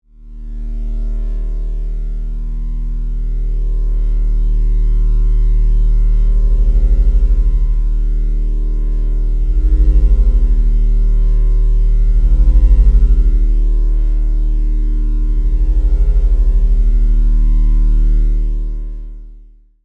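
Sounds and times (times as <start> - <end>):
sci-fi electrical hum: 0.6 - 19.0.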